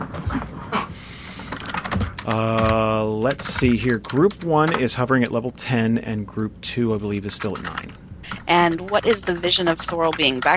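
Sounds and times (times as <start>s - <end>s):
faint room hum: 0.0s - 10.5s
typing on an old-school keyboard: 1.4s - 5.4s, 7.0s - 10.5s
speech: 2.3s - 10.5s.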